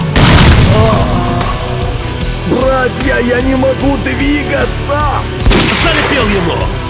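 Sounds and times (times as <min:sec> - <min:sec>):
grenade explosion in a war video game: 0:00.0 - 0:01.8, 0:05.4 - 0:06.5
speech: 0:02.8 - 0:06.8.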